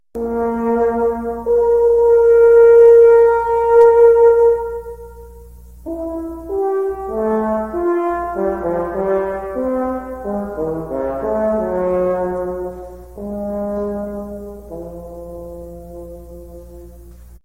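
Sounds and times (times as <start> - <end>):
baritone: 0.2 - 17.3.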